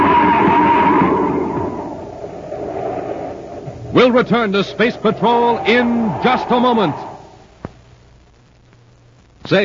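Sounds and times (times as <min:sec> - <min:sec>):
car skidding toward a cliff edge on a foggy highway: 0:00.0 - 0:07.4
heavy rumbling roar: 0:00.0 - 0:07.4
speech: 0:04.0 - 0:07.1, 0:09.5 - 0:09.6.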